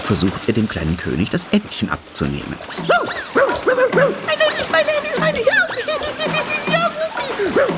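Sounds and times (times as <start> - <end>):
dog splashing water with its paws: 0.0 - 7.7
speech: 0.1 - 3.2, 3.9 - 6.4, 7.4 - 7.7
dog barking excitedly: 2.6 - 7.7
giggly laughter: 3.0 - 7.7.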